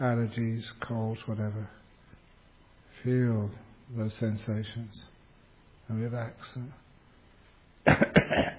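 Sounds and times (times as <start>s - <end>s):
speech: 0.0s - 1.8s, 3.0s - 5.1s, 5.9s - 6.8s, 7.8s - 8.5s
person coughing from throat irritation: 7.8s - 8.5s.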